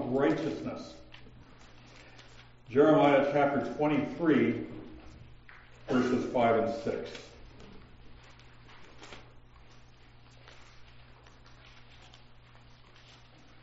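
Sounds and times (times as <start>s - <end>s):
speech: 0.1s - 1.0s, 2.7s - 4.8s, 5.9s - 7.3s
thin Bible pages turning: 0.2s - 2.6s, 6.7s - 13.6s.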